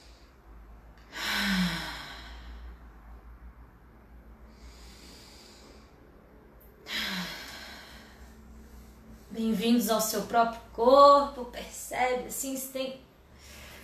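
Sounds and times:
deep conscious breathing during a guided breathing exercise: 0.0 - 9.4, 13.2 - 13.8
speech: 9.5 - 13.0.

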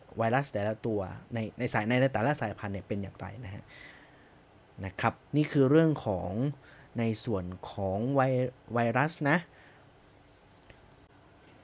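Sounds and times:
speech: 0.2 - 4.0, 4.8 - 9.6
computer mouse clicking: 10.5 - 11.1.

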